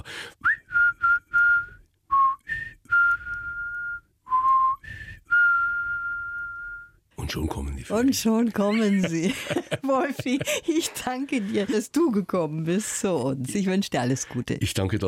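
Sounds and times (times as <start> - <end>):
person whistling a loud call: 0.4 - 7.0
speech: 7.4 - 15.0
laughter: 8.6 - 11.9.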